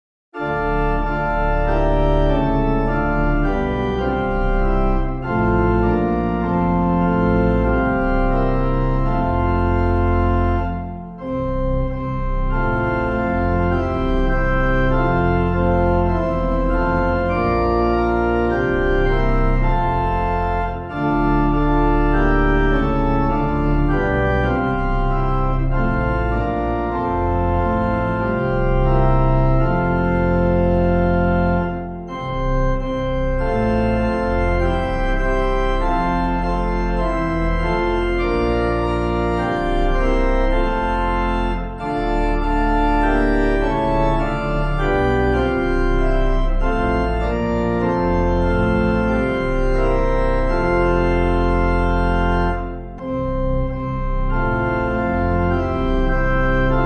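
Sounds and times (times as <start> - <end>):
organ: 0.4 - 56.8.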